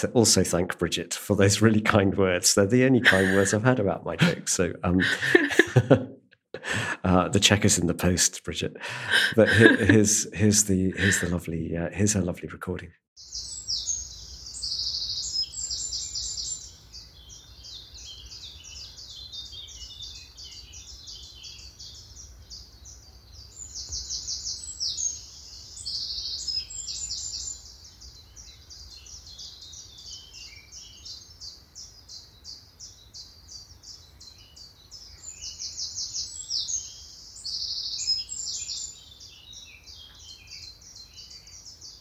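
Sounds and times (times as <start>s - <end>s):
chiffchaffs singing: 0.0s - 5.9s, 8.9s - 12.2s, 13.2s - 41.9s
speech: 0.0s - 13.5s
wrens singing: 1.5s - 5.7s, 13.2s - 41.9s
laughter: 2.9s - 7.5s, 8.8s - 11.5s.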